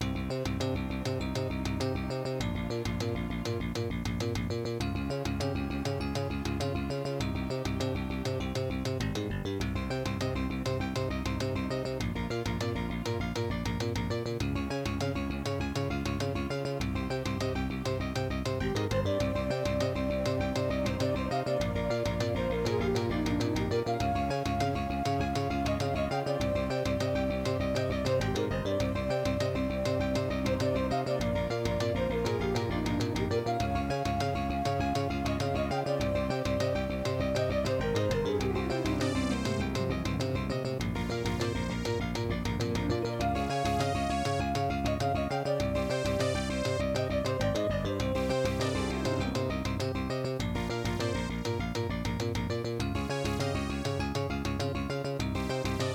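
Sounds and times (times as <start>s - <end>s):
Ensoniq soundcard test intro music: 0.0s - 55.9s.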